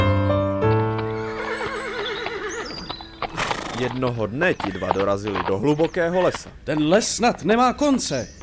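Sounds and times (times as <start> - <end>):
horse hooves clip-clopping: 0.2 - 8.4
saddled horse whinnying: 0.7 - 6.8
speech: 3.9 - 8.4.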